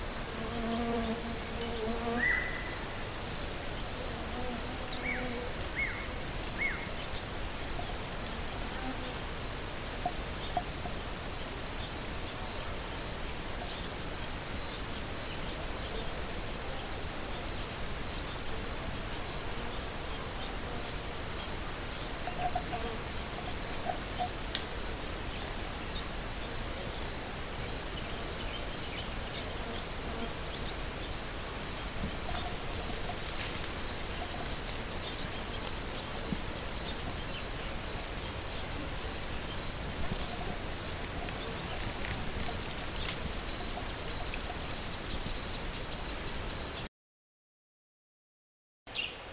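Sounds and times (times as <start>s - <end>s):
black-tailed cisticola calling: 0.1s - 9.4s, 9.9s - 46.9s, 48.9s - 49.2s.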